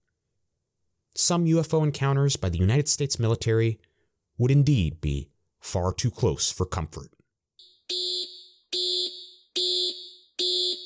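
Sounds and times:
speech: 1.2 - 7.2
military base electronic alarm blaring: 7.6 - 10.8.

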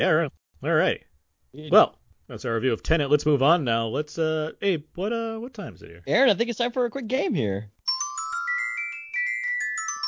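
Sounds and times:
speech: 0.0 - 7.8
phone ringtone melody of electronic tones: 7.9 - 10.0.

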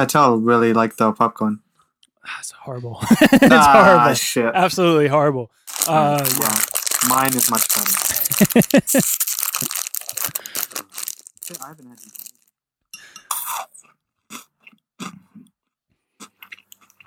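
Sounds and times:
speech: 0.0 - 1.6, 2.2 - 10.6, 11.5 - 12.3
laughter: 3.0 - 4.2, 8.1 - 9.1
person chewing crisp chocolate sweets: 5.7 - 12.4.

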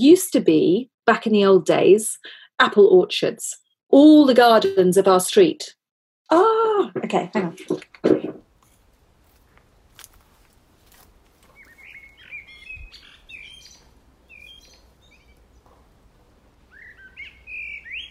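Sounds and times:
speech: 0.0 - 8.4
blackbird singing in a garden with dwarf apple and plum trees: 11.5 - 15.6, 16.7 - 18.0.

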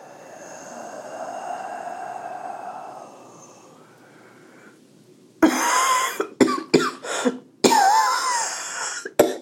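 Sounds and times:
long exhale: 0.0 - 4.8
faint droning hum: 0.0 - 9.4
harsh coughs: 5.4 - 9.4.

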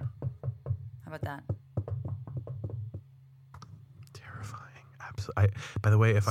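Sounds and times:
soft knocks on a door: 0.0 - 3.1
speech: 1.1 - 1.6, 5.2 - 6.2.

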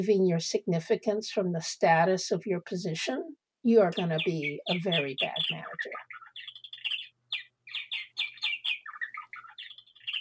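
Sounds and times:
speech: 0.0 - 6.2
small bird chirping with high-pitched tweets and trills: 3.7 - 10.1.

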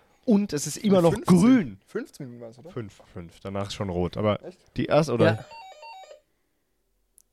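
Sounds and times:
speech: 0.2 - 5.6
doorbell electronic chime with bright alternating tones: 5.2 - 6.2.

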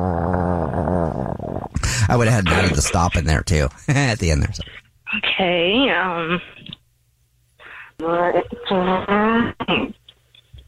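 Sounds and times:
person vocally imitating a motorcycle coming to a stop: 0.0 - 2.8
speech: 2.1 - 4.8, 5.4 - 6.6, 8.0 - 9.8.

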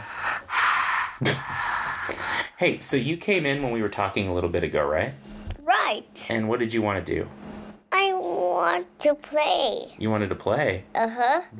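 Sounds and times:
heavy breathing into a microphone: 0.0 - 2.6
speech: 1.2 - 5.3, 5.9 - 7.4, 8.6 - 11.5.

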